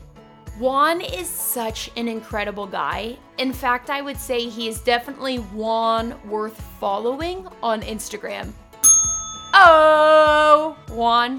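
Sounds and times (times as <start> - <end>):
speech: 0.6 - 8.6, 9.6 - 11.3
bell-like sound effect ringing: 8.8 - 10.7.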